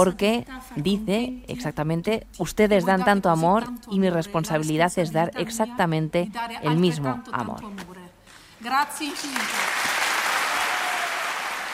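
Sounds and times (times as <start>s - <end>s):
speech: 0.0s - 8.0s, 8.6s - 9.7s
audience applause: 9.1s - 11.7s.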